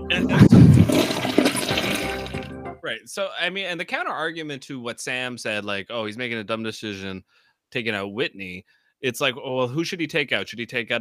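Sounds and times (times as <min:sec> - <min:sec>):
speech: 0:00.1 - 0:01.0, 0:02.9 - 0:10.9
toilet flushing: 0:00.2 - 0:02.5.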